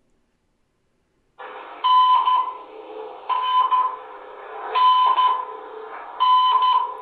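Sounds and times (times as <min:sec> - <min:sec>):
steady buzzy hum: 0:01.4 - 0:07.0
electronic Morse code beeps for the letter N: 0:01.8 - 0:02.6, 0:03.3 - 0:04.0, 0:04.8 - 0:05.5, 0:06.2 - 0:07.0.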